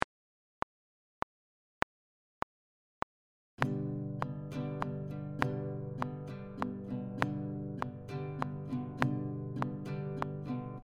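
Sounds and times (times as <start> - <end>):
guitar strumming pattern in six-eight time: 3.6 - 10.8.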